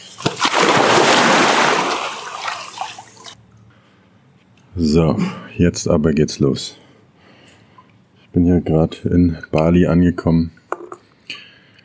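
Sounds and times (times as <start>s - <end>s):
water splashing in a swimming pool in Bali: 0.0s - 3.4s
speech: 4.8s - 6.8s, 8.4s - 10.6s.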